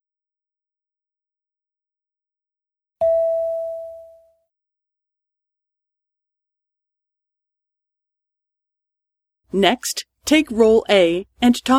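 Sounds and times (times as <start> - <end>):
chime tone cueing the listener to speak in a Japanese conversation exercise: 3.0 - 4.4
speech: 9.5 - 11.7.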